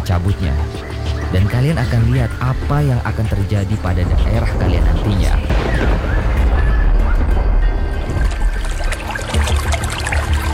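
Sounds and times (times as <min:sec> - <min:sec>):
speech: 0:00.1 - 0:06.4
water gushing out of a hole in the ground left by a pulled-out palm-rib stick: 0:07.4 - 0:10.5.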